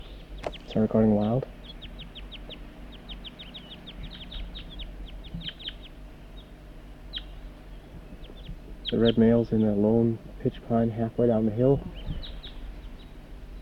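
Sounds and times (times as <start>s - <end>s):
low steady rumble: 0.0s - 13.6s
wild birds calling back and forth in sharp high chirps: 0.0s - 13.6s
speech: 0.7s - 1.6s, 8.9s - 12.0s.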